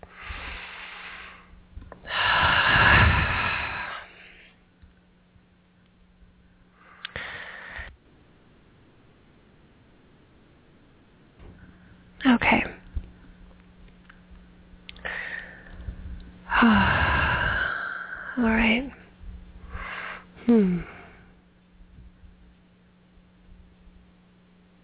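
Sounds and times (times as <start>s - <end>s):
person taking slow deep breaths: 0.0s - 4.6s, 6.8s - 8.0s, 15.0s - 18.4s, 19.6s - 21.4s
speech: 18.4s - 18.9s.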